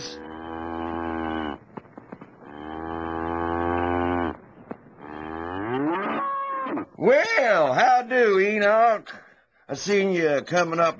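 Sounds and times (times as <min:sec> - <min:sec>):
cow mooing: 0:00.0 - 0:01.6, 0:02.4 - 0:04.4, 0:05.0 - 0:06.8
speech: 0:07.0 - 0:10.9.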